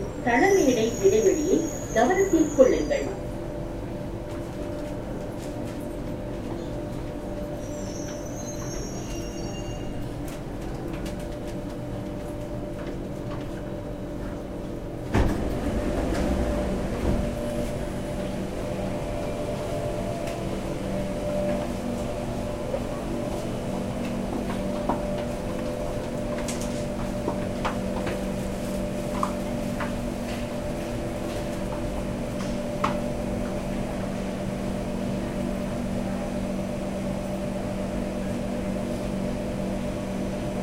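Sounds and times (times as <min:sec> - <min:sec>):
train idling at a platform: 0:00.0 - 0:40.6
speech: 0:00.2 - 0:01.1, 0:02.0 - 0:03.2
high squeal: 0:00.8 - 0:03.1, 0:07.6 - 0:10.1.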